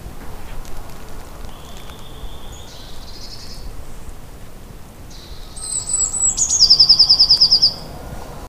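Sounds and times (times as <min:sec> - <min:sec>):
background hiss: 0:00.0 - 0:08.4
Eurasian blue tit song: 0:01.4 - 0:04.4, 0:05.0 - 0:08.0.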